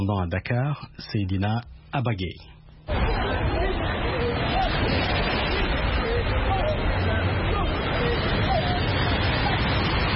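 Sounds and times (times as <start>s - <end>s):
speech: 0.0s - 3.7s
crowd babble of many voices on a busy beach: 2.9s - 10.1s
surf-like noise: 2.9s - 10.1s.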